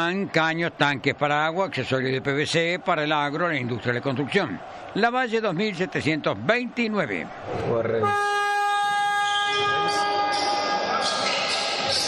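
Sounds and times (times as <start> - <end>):
speech: 0.0 - 8.4
horn blaring at a football match: 7.9 - 11.2.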